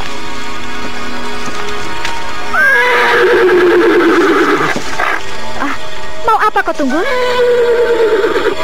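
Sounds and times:
restless horse whinnying: 2.5s - 5.2s, 7.0s - 8.6s
speech: 6.6s - 8.3s.

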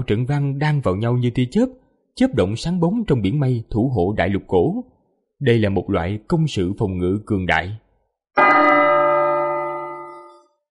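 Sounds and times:
speech: 0.0s - 7.8s
large golden bell ringing in a celestial palace: 8.4s - 10.5s.

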